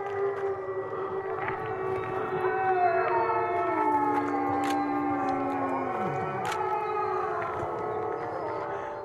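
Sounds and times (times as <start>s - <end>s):
wolf pack howling together in a chorus: 0.0s - 9.0s.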